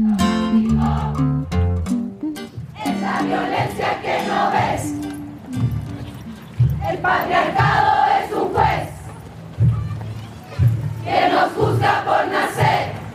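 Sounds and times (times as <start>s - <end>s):
large crowd of women performing a feminist protest chant: 0.1s - 1.3s, 2.7s - 5.1s, 6.7s - 9.1s, 10.9s - 13.1s
percussive beats: 1.5s - 8.9s, 9.5s - 13.1s
massed voices cheering: 2.8s - 13.1s.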